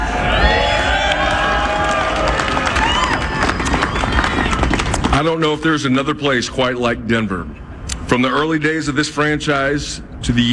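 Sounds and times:
people clapping in a stadium crowd: 0.0s - 5.6s
stadium crowd of Rockies fans cheering at a statue unveiling in Denver: 0.0s - 6.2s
speech: 5.2s - 10.5s.

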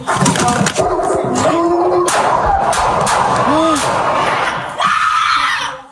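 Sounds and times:
police officer's gun firing: 0.1s - 4.8s
frantic shouting and raised voices: 1.1s - 5.8s.

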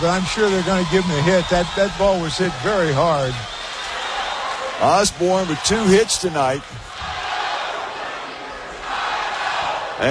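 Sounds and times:
speech: 0.0s - 3.6s, 4.8s - 7.1s
baseball stadium crowd cheering in Ohio: 0.0s - 10.0s.

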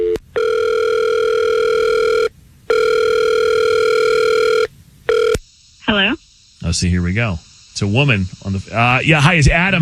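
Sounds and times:
telephone ringback tone on an outgoing call: 0.0s - 5.4s
speech: 6.7s - 9.8s.

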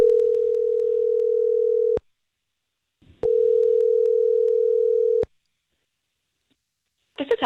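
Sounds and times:
telephone line ringing as a call is placed: 0.0s - 2.0s, 3.2s - 5.2s.

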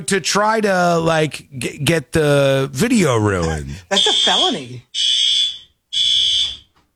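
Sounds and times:
speech: 0.0s - 5.3s
fire alarm blasts in a building: 3.9s - 6.8s.

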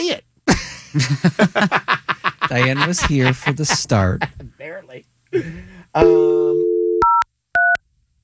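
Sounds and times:
speech: 0.0s - 4.4s, 5.4s - 6.5s
laughter: 0.5s - 4.6s
phone dial tone hum: 6.0s - 7.2s
two-pitch touch-tone beeps of phone keys being dialed: 6.0s - 7.8s.

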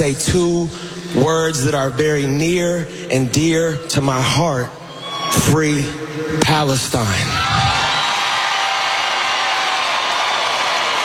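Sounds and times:
speech: 0.0s - 7.6s
large crowd cheering and whooping: 4.9s - 5.5s, 7.2s - 11.0s.

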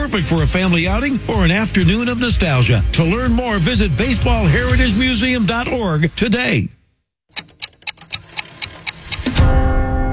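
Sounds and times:
speech: 0.1s - 6.8s
clock ticking: 7.3s - 9.4s.

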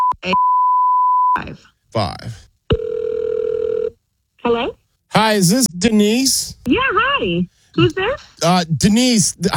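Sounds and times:
speech: 0.2s - 0.5s, 1.4s - 2.5s, 4.5s - 9.5s
telephone dial tone while placing a call: 2.7s - 3.9s.

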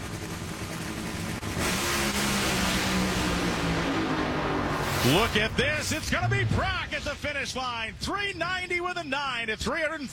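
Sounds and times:
nitro funny car engine roaring in a final-round drag race run: 0.0s - 7.6s
speech: 5.0s - 10.1s.

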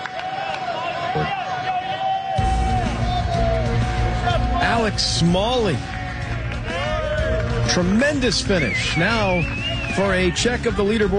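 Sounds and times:
golf gallery crowd cheering and yelling at a golf championship in Philadelphia: 0.0s - 11.1s
speech: 1.2s - 1.4s, 4.7s - 6.0s, 7.7s - 11.1s
long shrill whistle: 8.6s - 10.2s.

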